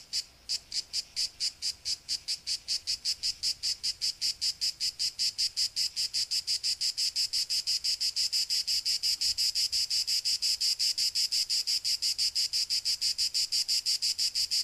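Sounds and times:
cicada buzzing in rhythmic pulses: 0.0 - 14.6.

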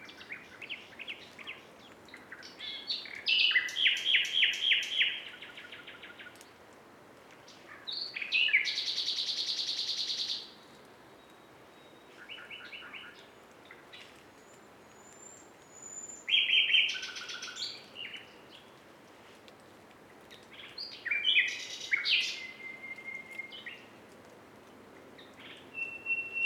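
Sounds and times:
several common nightingales singing together: 0.0 - 6.5, 7.5 - 18.7, 20.4 - 23.9, 25.2 - 26.4.

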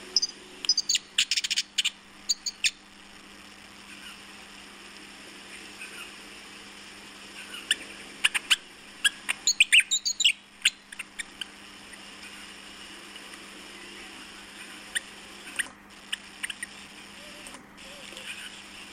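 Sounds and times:
Willie wagtail singing: 0.0 - 2.8, 7.5 - 11.4
faint hum: 0.0 - 18.9.

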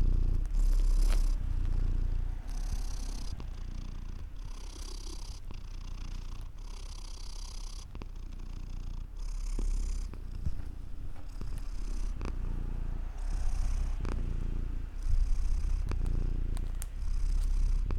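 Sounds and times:
cat purring: 0.0 - 17.9
soft clicks and rustles: 0.4 - 1.8, 9.5 - 12.0, 15.8 - 17.9.

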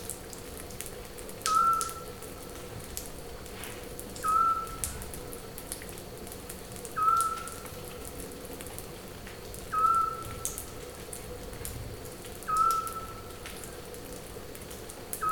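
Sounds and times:
scops owl giving soft whistled hoots: 1.5 - 2.0, 4.2 - 4.8, 7.0 - 7.6, 9.7 - 10.4, 12.5 - 13.2.

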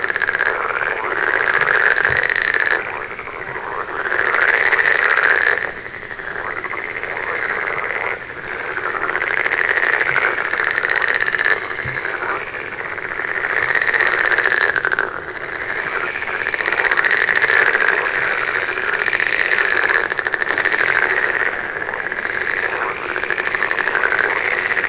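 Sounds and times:
frog chorus of rattling croaks: 0.0 - 24.8
steady background hiss: 0.0 - 24.8.

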